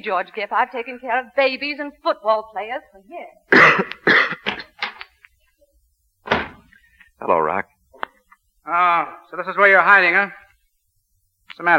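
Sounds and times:
speech: 0:00.0 - 0:04.3, 0:07.2 - 0:07.7, 0:08.7 - 0:10.4, 0:11.5 - 0:11.7
harsh coughing: 0:03.5 - 0:04.8.

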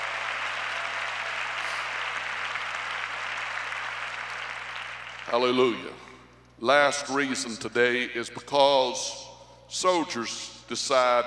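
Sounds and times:
large crowd clapping in a big room: 0:00.0 - 0:06.1
speech: 0:05.3 - 0:11.2.

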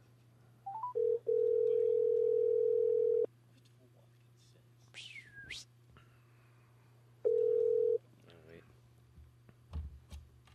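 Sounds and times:
outgoing phone call ringing tone: 0:00.7 - 0:03.3, 0:07.3 - 0:08.0
phone dialing beeps: 0:00.7 - 0:03.3.

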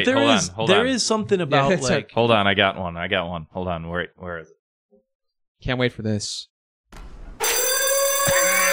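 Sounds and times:
speech: 0:00.0 - 0:04.6, 0:05.6 - 0:07.1
gym lunk alarm electronic alarm bell ringing: 0:07.4 - 0:08.7.

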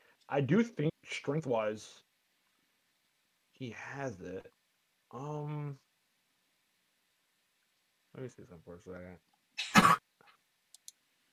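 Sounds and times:
speech: 0:00.3 - 0:02.1, 0:03.6 - 0:05.8, 0:08.2 - 0:09.3
person coughing heavily: 0:09.6 - 0:10.0
small clicks: 0:10.7 - 0:11.0.

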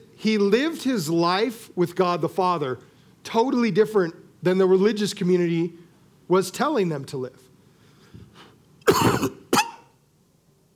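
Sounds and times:
speech: 0:00.2 - 0:07.5
person coughing harshly: 0:08.9 - 0:09.9.

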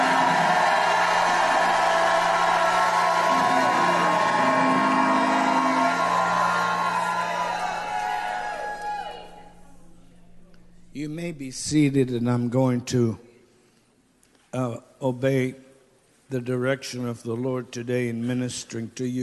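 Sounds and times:
large audience shouting and cheering: 0:00.0 - 0:09.7
speech: 0:11.2 - 0:13.2, 0:14.5 - 0:15.6, 0:16.3 - 0:19.2.

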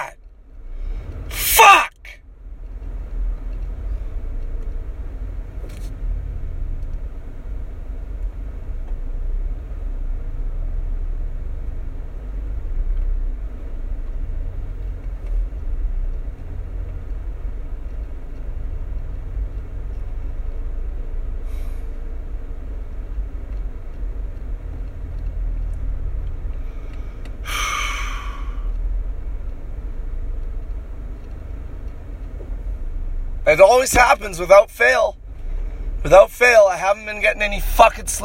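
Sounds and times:
low rumble of road traffic: 0:00.0 - 0:38.2
car passing close with a brighter hiss: 0:21.2 - 0:22.2, 0:26.5 - 0:28.9
speech: 0:33.5 - 0:35.2, 0:36.0 - 0:38.2.

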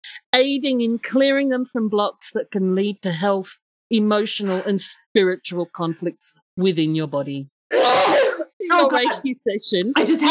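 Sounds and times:
speech: 0:00.4 - 0:08.1, 0:08.7 - 0:10.3
person sneezing: 0:07.7 - 0:08.6.

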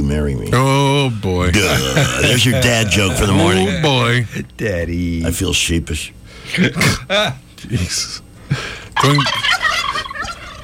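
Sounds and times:
speech: 0:00.1 - 0:09.5
turkeys gobbling in a warbling chorus: 0:09.0 - 0:10.6.

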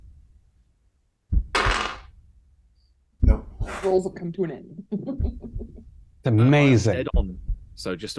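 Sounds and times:
heartbeat sound effect: 0:01.3 - 0:01.6, 0:03.2 - 0:03.8, 0:05.1 - 0:05.9, 0:07.1 - 0:07.9
speech: 0:03.8 - 0:08.1.

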